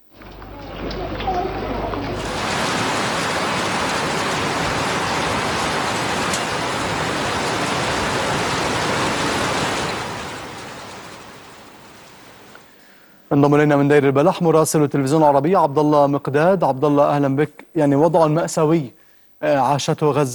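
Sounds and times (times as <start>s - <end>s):
strong wind: 0.0s - 12.7s
heavy rain: 0.0s - 13.1s
speech: 13.4s - 20.3s.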